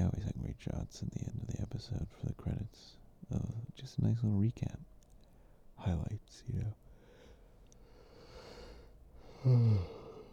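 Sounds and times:
speech: 0:00.6 - 0:04.9, 0:05.8 - 0:06.8, 0:09.4 - 0:10.0
single short voiced yawn: 0:09.3 - 0:10.3.

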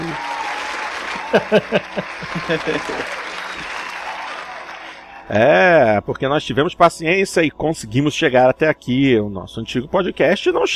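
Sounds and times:
laughter: 0:00.0 - 0:05.2
small group clapping hands: 0:00.0 - 0:05.4
speech: 0:01.3 - 0:03.2, 0:05.3 - 0:10.7.

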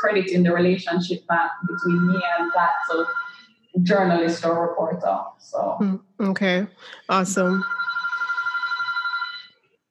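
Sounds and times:
speech: 0:00.0 - 0:07.9
telephone ringing with an electronic warble: 0:01.3 - 0:04.4, 0:07.5 - 0:09.8.

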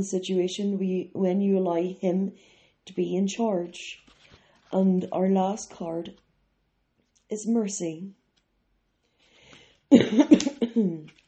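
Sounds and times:
speech: 0:00.0 - 0:04.0, 0:04.7 - 0:06.2, 0:07.3 - 0:08.2, 0:09.9 - 0:11.2
person clearing throat: 0:09.9 - 0:11.1.

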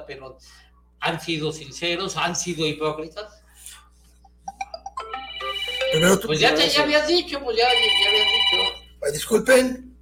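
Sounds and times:
speech: 0:00.1 - 0:03.8, 0:05.9 - 0:09.9
phone ringtone for an incoming call: 0:04.6 - 0:06.9, 0:07.6 - 0:09.0.

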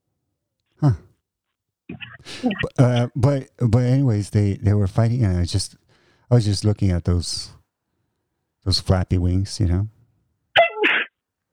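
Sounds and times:
speech: 0:00.8 - 0:01.0, 0:02.4 - 0:07.6, 0:08.6 - 0:10.0
single sharp sneeze: 0:02.2 - 0:02.7.

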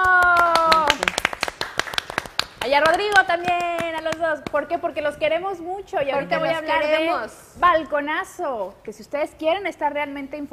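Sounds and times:
small group applauding with crisp handclaps: 0:00.0 - 0:04.6
speech: 0:02.7 - 0:10.5.

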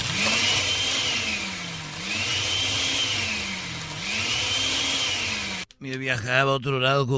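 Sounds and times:
blender whirring: 0:00.0 - 0:05.8
speech: 0:05.8 - 0:07.1.

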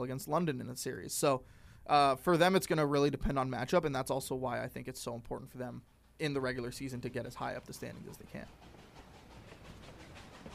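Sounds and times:
speech: 0:00.0 - 0:08.8
train rumbling past: 0:06.4 - 0:10.5
wheels clattering on track: 0:06.7 - 0:10.5.

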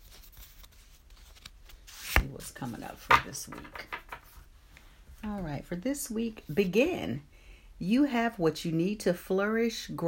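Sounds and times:
deck of cards being shuffled: 0:00.0 - 0:04.5
speech: 0:02.6 - 0:04.0, 0:05.2 - 0:10.0.

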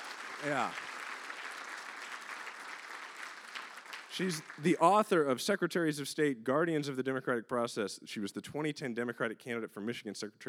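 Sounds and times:
audience applause for a guest speaker: 0:00.0 - 0:05.1
speech: 0:00.4 - 0:00.9, 0:04.2 - 0:10.4.

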